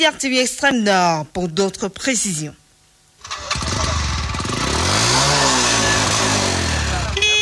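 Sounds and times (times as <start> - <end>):
speech: 0.0 - 2.6
motorcycle engine starting and revving at a motorcycle market in an old bus station in Maroua: 3.2 - 7.4.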